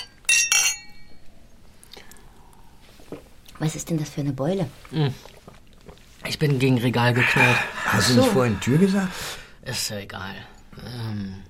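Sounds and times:
glasses clinking together in a toast: 0.0s - 1.2s
speech: 3.6s - 5.4s, 6.4s - 11.3s.

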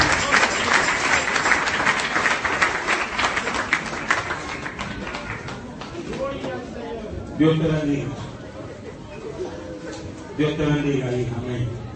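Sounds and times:
church congregation applauding: 0.0s - 6.0s
speech: 7.4s - 8.2s, 10.4s - 11.8s.

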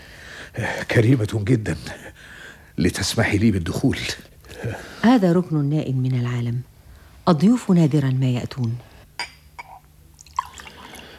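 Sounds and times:
speech: 0.6s - 8.9s
tea poured into a cup: 10.2s - 11.1s.

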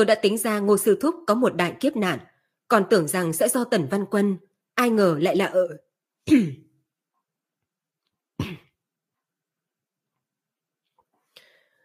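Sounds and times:
speech: 0.0s - 6.6s
dry coughs: 8.4s - 8.8s.

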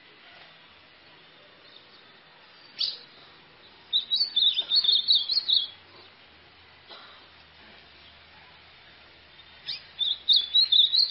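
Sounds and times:
white-throated seedeater chipping and singing a twittering song: 1.1s - 6.2s, 9.3s - 11.0s.

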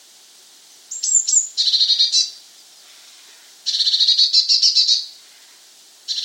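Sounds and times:
Eurasian blue tit Cyanistes caeruleus calling: 0.9s - 2.4s, 3.7s - 5.1s.

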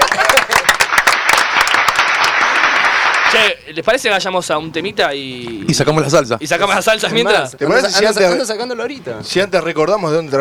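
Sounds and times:
audience applause at a live show: 0.0s - 3.5s
speech: 3.3s - 10.4s.

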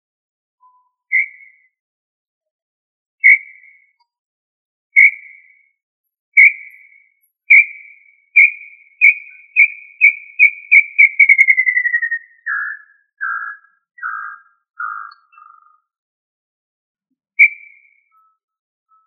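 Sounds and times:
tinamou whistled call: 1.1s - 1.7s, 3.2s - 3.8s, 5.0s - 5.6s, 6.4s - 15.7s, 17.4s - 18.3s.

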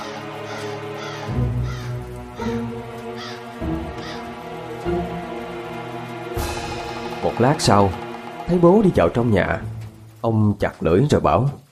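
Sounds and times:
flock of panicked crows cawing over a village on a winter night: 0.0s - 7.2s
steady low drone: 2.2s - 10.2s
speech: 7.4s - 11.6s.

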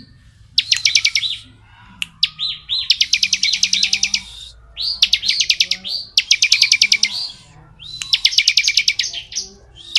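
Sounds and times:
bar-winged prinia singing phrases of fast sharp notes: 0.0s - 9.9s.

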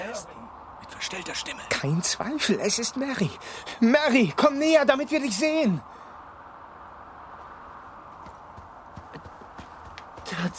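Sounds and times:
speech: 0.2s - 6.0s
small pony hooves clip-clopping in fog: 8.1s - 10.5s.

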